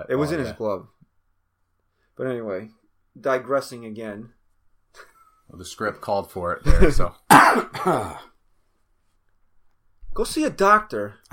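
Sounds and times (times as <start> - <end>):
speech: 0.0 - 1.0, 2.2 - 4.4, 5.0 - 8.3, 10.2 - 11.3
rough throaty cough: 7.3 - 8.4.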